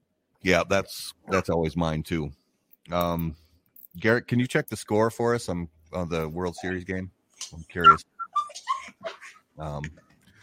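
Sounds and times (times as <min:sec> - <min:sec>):
speech: 0:00.4 - 0:03.4, 0:04.0 - 0:08.1, 0:09.6 - 0:10.0
dog whimpering and yowling: 0:06.4 - 0:06.8, 0:07.8 - 0:09.4.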